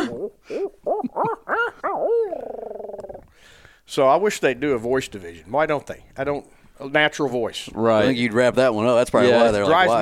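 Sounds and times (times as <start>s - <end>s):
owl hooting: 0.0s - 3.3s
speech: 3.9s - 10.0s.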